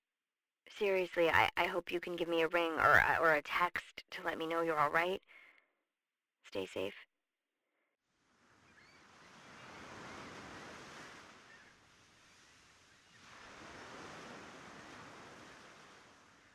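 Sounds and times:
speech: 0.8s - 5.4s, 6.5s - 7.1s
ocean waves breaking on a shore: 8.2s - 16.5s.

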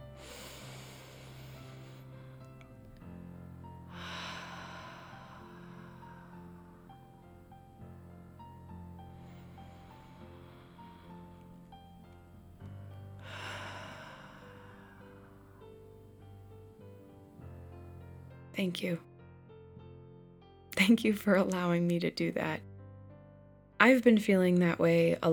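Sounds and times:
person taking deep breaths: 0.0s - 16.5s
speech: 18.6s - 19.1s, 20.8s - 22.7s, 23.8s - 25.3s.

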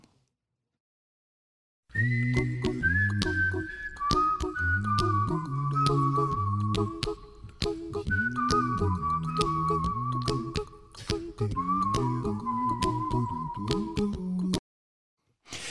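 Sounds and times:
bright whistled tune: 1.9s - 14.1s.

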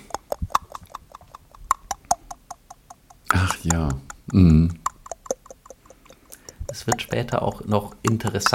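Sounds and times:
pen tapping with artificial reverb: 0.0s - 8.5s
speech: 3.5s - 4.8s, 6.8s - 8.5s.

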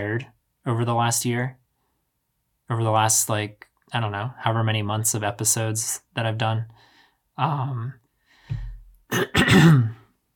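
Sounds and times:
speech: 0.0s - 1.6s, 2.7s - 10.0s
throaty cough: 9.1s - 10.1s.

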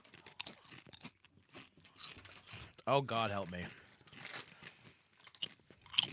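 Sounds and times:
crunching and chewing of fried chicken-and-tapioca chips: 0.0s - 6.1s
speech: 2.9s - 3.8s.

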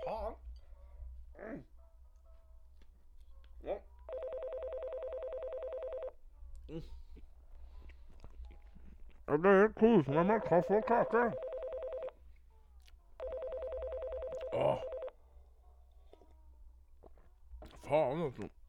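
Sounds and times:
telephone ringing in a rapidly trilling burst: 4.1s - 6.2s, 10.3s - 12.2s, 13.2s - 15.1s
speech: 9.3s - 11.4s, 18.3s - 18.6s
person making short vocal sounds: 14.4s - 14.9s.

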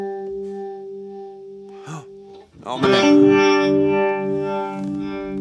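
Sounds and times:
sustained electric guitar note through a harmonic tremolo pedal: 1.8s - 5.1s.

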